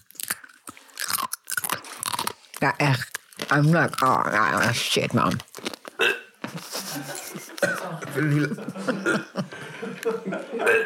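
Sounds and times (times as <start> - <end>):
dried snack being bitten and chewed: 0.0 - 6.8
speech: 2.6 - 5.5, 7.6 - 10.8
laughter: 6.5 - 10.8.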